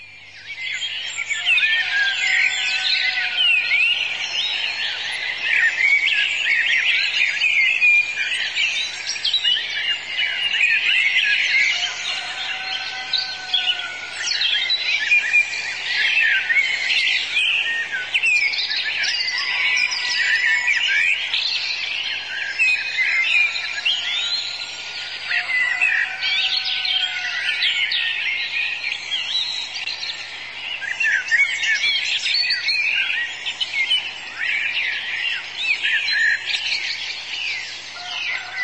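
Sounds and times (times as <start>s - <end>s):
busy chorus of other birds chirping and trilling: 0.0s - 38.6s
chaffinch singing: 0.0s - 38.6s.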